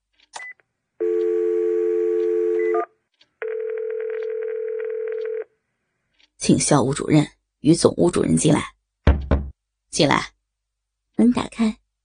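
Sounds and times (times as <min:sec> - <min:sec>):
desk telephone dial tone: 0:01.0 - 0:02.8, 0:03.4 - 0:05.4
sustained telephone line tone: 0:01.0 - 0:05.4
speech: 0:06.5 - 0:08.8, 0:10.0 - 0:10.4, 0:11.2 - 0:11.8.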